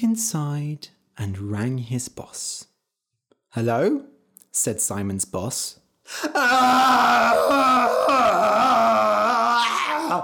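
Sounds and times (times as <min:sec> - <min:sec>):
speech: 0:00.0 - 0:02.7, 0:03.5 - 0:10.2
man screaming in frustration: 0:06.2 - 0:10.2.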